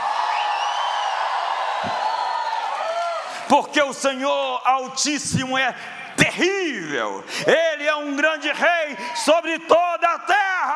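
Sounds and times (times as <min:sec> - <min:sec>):
higher whoops from crowd: 0:00.0 - 0:03.4
large crowd shouting and cheering in triumph: 0:00.0 - 0:04.1, 0:07.4 - 0:10.7
speech: 0:03.5 - 0:10.7.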